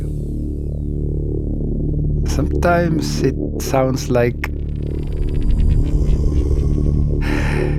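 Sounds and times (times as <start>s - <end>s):
low throbbing ambient drone in meditative track: 0.0s - 7.7s
speech: 2.4s - 5.0s
recorded human breathing in ambient track: 5.5s - 7.7s.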